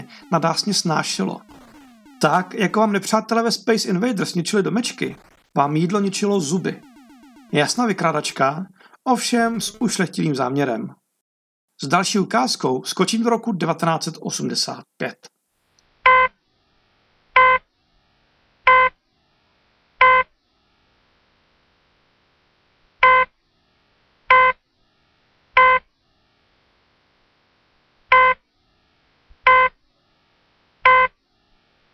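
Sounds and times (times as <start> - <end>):
video game heart monitor beeping: 0.0 - 3.2, 4.8 - 10.0, 16.1 - 16.3, 17.4 - 17.6, 18.7 - 19.0, 20.0 - 20.3, 23.0 - 23.3, 24.3 - 24.6, 25.6 - 25.9, 28.1 - 28.4, 29.4 - 29.8, 30.8 - 31.2
speech: 0.1 - 1.6, 2.2 - 6.9, 7.5 - 11.0, 11.8 - 15.4.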